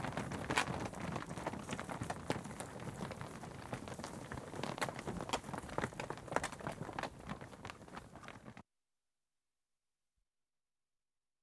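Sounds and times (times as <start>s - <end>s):
cattle hooves knocking on tarmac: 0.0s - 8.6s.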